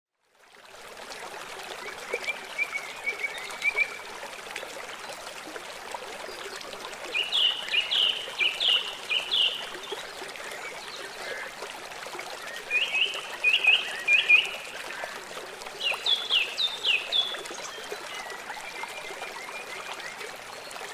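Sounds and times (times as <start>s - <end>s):
gentle river flowing: 0.2s - 20.9s
birds singing: 7.1s - 11.5s, 12.4s - 15.2s, 15.8s - 19.8s.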